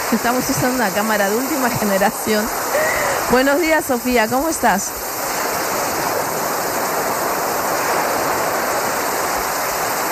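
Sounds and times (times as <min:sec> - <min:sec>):
steady rushing of running water: 0:00.0 - 0:10.1
speech: 0:00.1 - 0:05.0.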